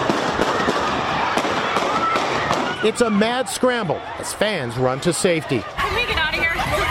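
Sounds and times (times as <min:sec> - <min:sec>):
gunshots at a sports event: 0:00.0 - 0:03.0
crowd noise and voices at a sports event: 0:00.0 - 0:06.9
speech: 0:02.8 - 0:06.0.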